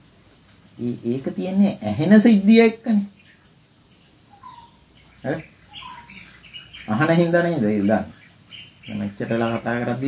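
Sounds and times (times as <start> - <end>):
hiss: 0.0 - 10.0
speech: 0.8 - 3.2, 5.2 - 5.5, 6.9 - 8.2, 8.9 - 10.0
bird calling outdoors: 2.0 - 10.0.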